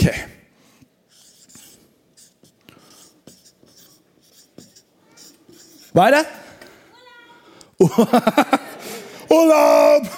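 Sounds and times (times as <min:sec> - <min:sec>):
handwriting with a pen on paper: 0:01.1 - 0:06.0
speech: 0:06.0 - 0:06.4, 0:07.8 - 0:08.6, 0:09.3 - 0:10.1
laughter: 0:07.8 - 0:09.3.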